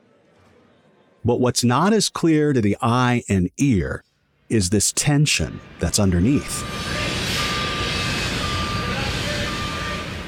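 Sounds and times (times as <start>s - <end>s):
speech: 1.2s - 7.2s
truck reversing beeper: 5.5s - 10.2s.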